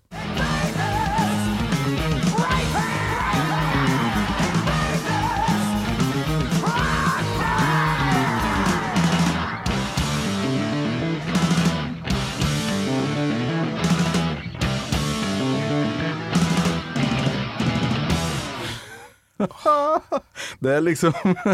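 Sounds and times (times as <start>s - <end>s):
wailing yelled heavy metal vocal: 0.0s - 11.4s
thick distorted heavy metal guitars: 0.0s - 18.9s
busy rumbling bass: 0.2s - 18.6s
laughter: 18.6s - 20.3s, 21.0s - 21.5s
speech: 20.6s - 21.5s.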